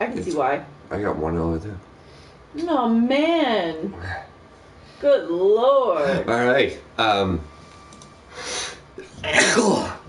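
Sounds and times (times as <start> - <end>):
speech: 0.0 - 1.9, 2.5 - 4.3, 5.0 - 7.5, 9.2 - 9.9
person sneezing: 9.2 - 10.0.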